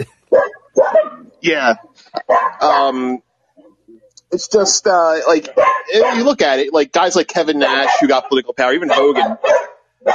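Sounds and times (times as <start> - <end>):
dogs barking: 0.2 - 3.1, 5.3 - 6.6, 7.4 - 10.1
speech: 1.4 - 3.3, 4.3 - 10.1
person laughing: 2.6 - 3.2, 4.4 - 9.2.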